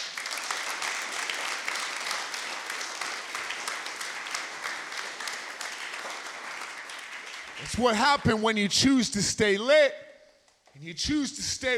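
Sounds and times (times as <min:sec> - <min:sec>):
audience applause: 0:00.0 - 0:08.3
speech: 0:07.6 - 0:10.0, 0:10.8 - 0:11.7.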